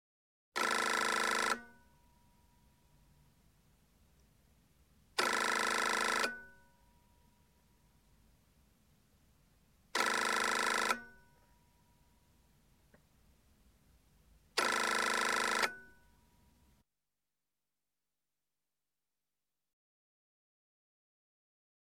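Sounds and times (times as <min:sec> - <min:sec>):
European office telephone ringing: 0:00.6 - 0:02.1, 0:05.2 - 0:07.0, 0:10.0 - 0:11.6, 0:14.6 - 0:16.2.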